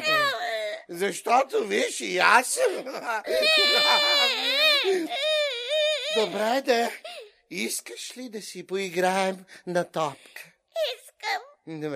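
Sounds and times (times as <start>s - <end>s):
young child crying: 0.0s - 0.7s, 3.2s - 6.6s, 10.8s - 11.6s
speech: 0.9s - 5.3s, 6.1s - 11.9s.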